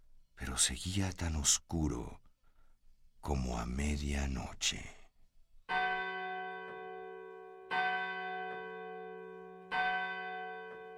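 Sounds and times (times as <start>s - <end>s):
speech: 0.6s - 2.2s, 3.2s - 5.0s
church bell striking the hour: 5.7s - 10.9s.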